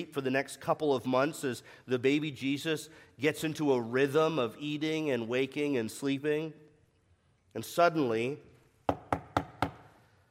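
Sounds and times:
speech: 0.0s - 6.6s, 7.6s - 8.5s
knocking on a door: 8.9s - 9.8s.

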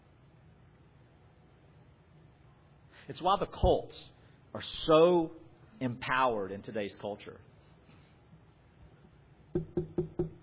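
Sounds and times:
speech: 3.0s - 7.5s, 9.6s - 10.3s
firm knocking on a wooden door: 9.6s - 10.4s.

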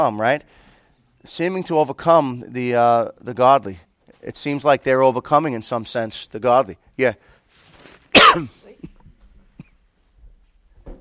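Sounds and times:
speech: 0.0s - 0.6s, 1.2s - 7.3s, 8.2s - 8.6s
loud cough: 8.1s - 9.0s.

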